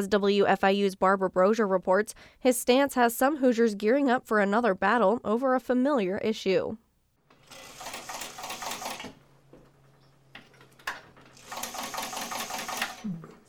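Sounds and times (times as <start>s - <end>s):
speech: 0.0s - 6.8s
sewing machine stitching fabric: 7.3s - 9.2s, 11.3s - 13.4s.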